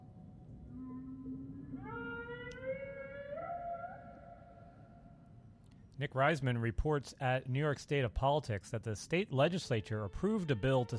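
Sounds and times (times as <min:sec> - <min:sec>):
whale call sound effect: 0:00.7 - 0:05.3
speech: 0:06.0 - 0:10.9.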